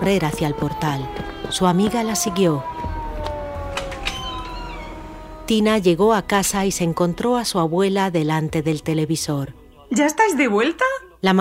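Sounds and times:
speech: 0.0 - 2.8, 5.5 - 11.3
police siren wailing: 0.0 - 5.6
sharp clicks: 3.2 - 4.5.

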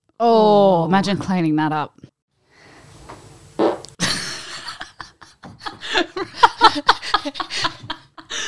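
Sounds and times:
speech: 0.2 - 2.1, 6.8 - 7.7
fart: 3.6 - 4.0
people laughing: 4.0 - 8.4.

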